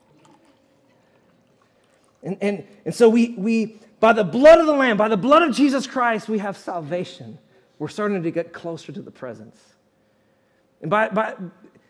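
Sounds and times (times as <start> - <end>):
grape juice being poured out: 0.0 - 2.8
speech: 2.2 - 9.8, 10.8 - 11.8.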